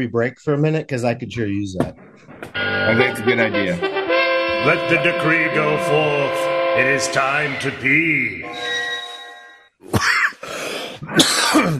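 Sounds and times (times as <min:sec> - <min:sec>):
speech: 0:00.0 - 0:04.0, 0:04.6 - 0:08.8, 0:11.6 - 0:11.7
steady ringing tone: 0:02.6 - 0:03.6, 0:04.4 - 0:09.7
harsh coughs: 0:09.9 - 0:10.4, 0:11.0 - 0:11.7.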